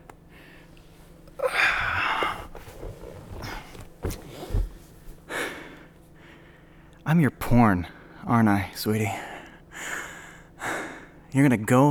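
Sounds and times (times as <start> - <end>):
man panting heavily after exercise in a gym: 1.4 - 3.8, 4.4 - 6.8, 9.1 - 11.3
speech: 7.1 - 9.3, 11.3 - 11.8.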